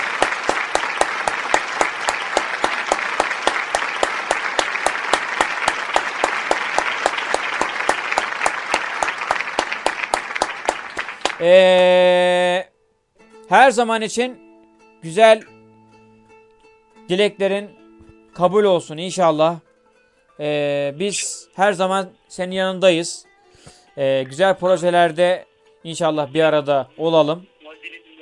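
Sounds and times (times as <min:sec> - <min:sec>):
audience applause: 0:00.0 - 0:11.5
speech: 0:11.4 - 0:12.2, 0:13.5 - 0:14.4, 0:15.0 - 0:15.5, 0:17.1 - 0:17.8, 0:18.4 - 0:19.7, 0:20.4 - 0:28.0.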